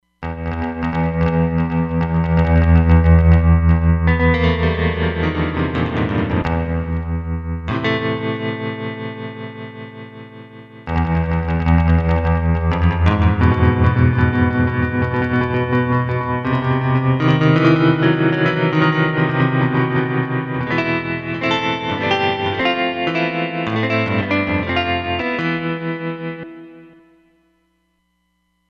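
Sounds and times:
surf guitar on a Roland Fantom XR synthesizer: 0.2s - 27.4s.

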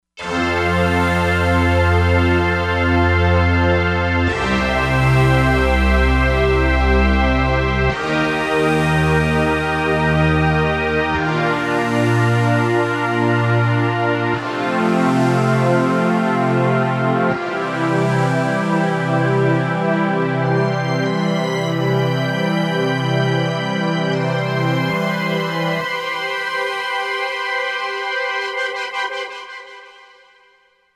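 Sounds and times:
Korg MSC-07S air synth: 0.2s - 30.5s.

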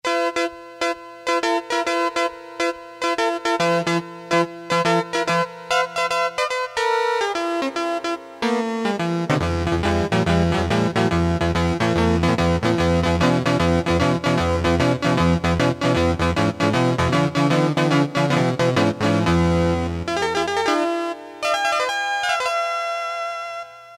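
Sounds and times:
Casio MT-500 keyboard tones: 0.1s - 23.9s
electric guitar: 8.6s - 20.8s.

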